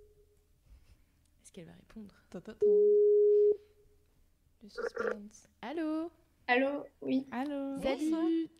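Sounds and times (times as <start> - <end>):
speech: 1.6 - 3.1, 4.7 - 8.5
telephone ringing tone while placing a call: 4.8 - 5.2.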